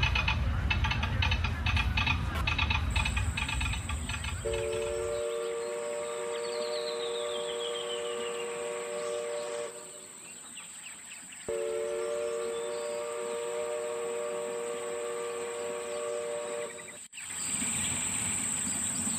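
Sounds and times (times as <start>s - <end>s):
small amusement park railroad train rumbling at Disneyland: 0.0s - 19.1s
amusement park railroad train whistle: 3.0s - 10.3s, 11.5s - 17.1s.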